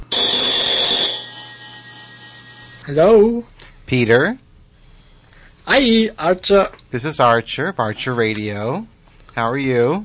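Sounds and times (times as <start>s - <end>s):
Skype outgoing call ringing tone: 0.0s - 2.8s
speech: 2.9s - 4.4s, 5.7s - 10.0s.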